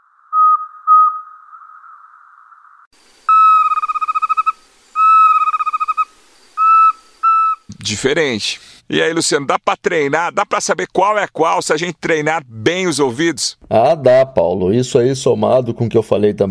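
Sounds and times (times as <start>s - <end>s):
least pygmy owl calling: 0.0s - 8.0s
speech: 7.9s - 16.4s.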